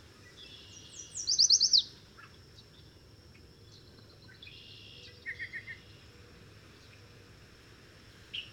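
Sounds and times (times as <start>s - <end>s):
bird song: 0.1s - 3.0s, 3.6s - 7.1s, 8.3s - 8.5s.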